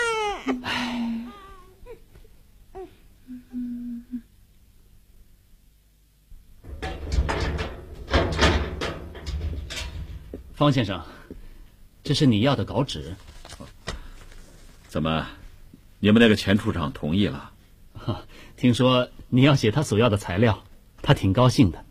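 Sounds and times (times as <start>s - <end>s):
infant crying in short wailing bursts: 0.0s - 2.1s
loud clattering knocks: 6.6s - 10.5s
speech: 10.6s - 11.3s, 12.1s - 13.3s, 14.9s - 15.4s, 16.0s - 21.8s.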